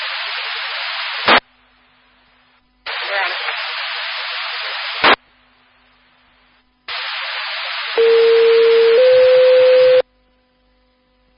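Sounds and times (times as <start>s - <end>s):
radio static bursts: 0.0s - 1.5s, 2.8s - 10.0s.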